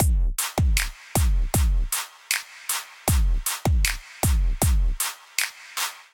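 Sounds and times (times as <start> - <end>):
drum kit groove: 0.0 - 6.1.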